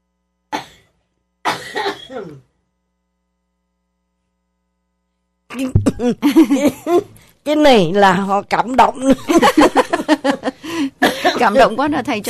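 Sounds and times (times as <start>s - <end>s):
harsh coughing: 0.5s - 0.9s, 1.5s - 2.5s, 5.5s - 7.2s, 10.7s - 11.7s
throat clearing: 1.5s - 2.5s, 5.5s - 6.2s
speech: 1.7s - 2.5s, 5.5s - 12.2s
laughter: 6.0s - 7.1s, 9.1s - 12.2s.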